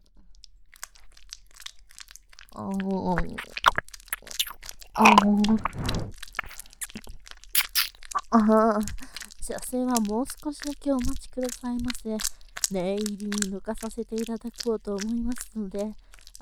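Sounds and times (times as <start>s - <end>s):
crunchy crinkling from an ASMR ear massage: 0.7s - 16.4s
speech: 2.6s - 3.6s, 5.0s - 6.2s, 8.3s - 16.4s
scratchy rubbing from an ASMR ear massage: 3.2s - 8.0s.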